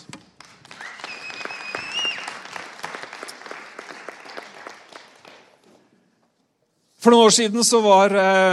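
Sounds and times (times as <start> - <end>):
church audience clapping: 0.0 - 6.0
faint cheers or whistles: 0.8 - 2.5
speech: 7.0 - 8.5.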